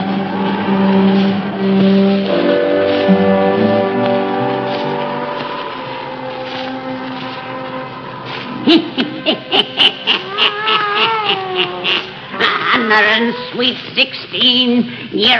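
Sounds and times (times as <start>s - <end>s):
sustained droning tone: 0.0s - 9.3s
laughter: 8.6s - 12.8s
black cat meowing and yowling: 10.2s - 13.6s
speech: 13.3s - 15.3s.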